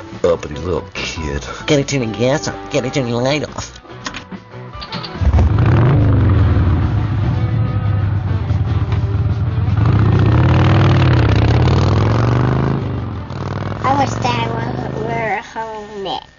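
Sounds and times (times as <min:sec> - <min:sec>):
speech: 0:00.2 - 0:03.8
motorcycle engine starting and idling: 0:04.8 - 0:15.0.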